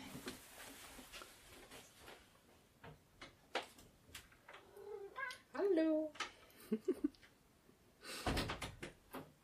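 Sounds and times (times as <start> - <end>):
soft clicks and shuffling of a door being opened: 0.0 - 7.4
cat meowing: 4.7 - 5.4
speech: 6.7 - 7.1.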